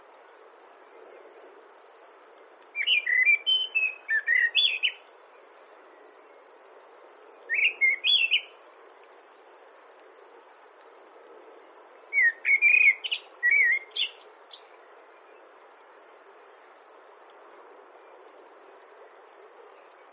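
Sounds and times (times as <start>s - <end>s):
common blackbird singing fluting whistles with twittery endings: 2.8s - 5.0s, 7.5s - 8.5s, 12.2s - 14.6s.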